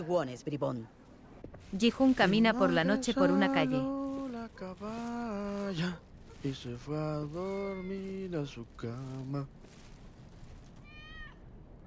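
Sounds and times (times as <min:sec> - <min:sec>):
speech: 0:00.0 - 0:09.8
low rumble of street noise at night: 0:00.2 - 0:11.8
kitten meowing: 0:10.8 - 0:11.8.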